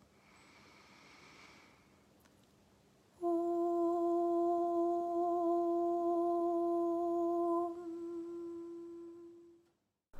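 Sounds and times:
long steady Om chanted at a higher pitch: 3.2s - 9.6s.

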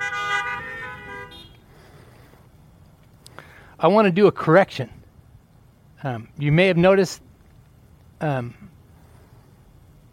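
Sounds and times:
car horns honking: 0.0s - 1.7s
low engine rumble: 0.0s - 10.1s
speech: 3.8s - 5.0s, 6.0s - 7.3s, 8.2s - 8.7s.

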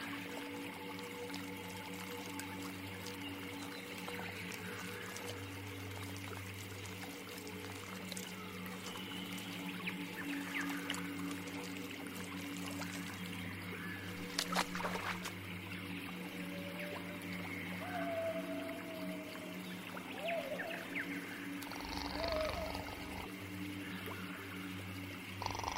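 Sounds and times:
layered low drones and humming tones of sci-fi alien forest ambience: 0.0s - 25.7s
watery gurgles: 0.0s - 25.7s
warbling whale-like calls: 16.2s - 23.4s.

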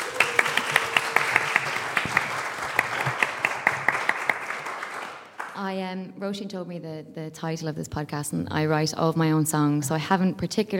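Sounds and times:
audience applauding: 0.0s - 5.6s
speech: 5.6s - 10.7s.

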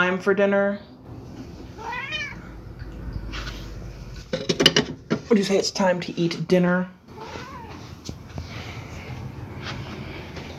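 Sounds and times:
steady low hum: 0.0s - 10.5s
speech: 0.1s - 0.9s, 5.3s - 7.0s
cat meowing: 1.8s - 2.5s, 7.1s - 8.0s.

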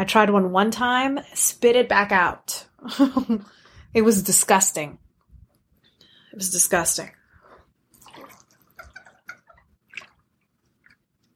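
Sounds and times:
speech: 0.0s - 5.0s, 6.3s - 7.2s
water splashing and dribbling from a water bottle: 7.9s - 11.0s.

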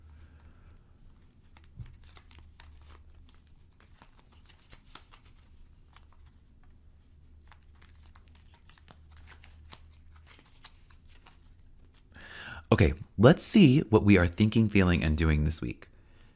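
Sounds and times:
tarot cards being shuffled: 1.0s - 12.1s
speech: 12.7s - 15.9s.

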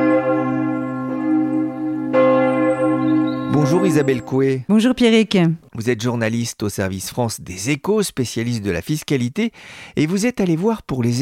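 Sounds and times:
church bell tolling a death knell: 0.0s - 4.7s
speech: 3.7s - 11.2s.

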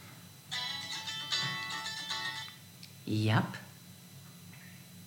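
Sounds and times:
mobile phone ringing with a bright electronic melody: 0.5s - 2.6s
speech: 3.1s - 3.6s.

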